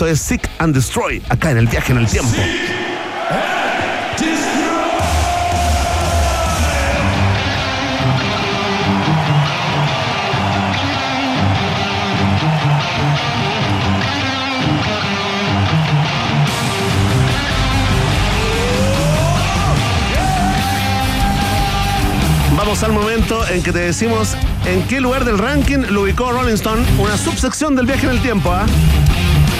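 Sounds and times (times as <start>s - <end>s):
speech: 0.0s - 4.3s, 22.6s - 29.1s
concert crowd noise: 1.6s - 29.5s
live metal performance with distorted guitars and pounding drums: 4.9s - 29.5s
sliding guitar bend: 7.0s - 22.5s.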